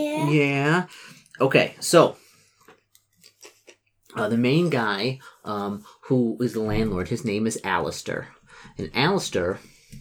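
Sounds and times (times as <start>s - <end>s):
speech: 0.0s - 2.2s, 4.2s - 9.9s
crunchy chewing of a potato chip: 2.6s - 4.2s.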